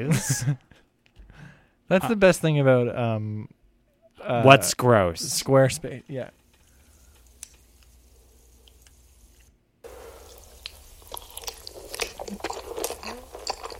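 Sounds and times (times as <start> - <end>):
speech: 0.0 - 0.8, 1.9 - 3.6, 4.2 - 6.4
man chewing spicy mac and cheese: 8.6 - 13.7.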